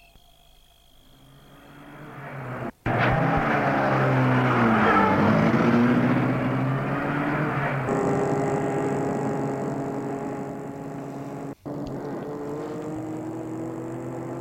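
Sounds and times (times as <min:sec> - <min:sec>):
car engine starting and running: 0:01.0 - 0:14.3.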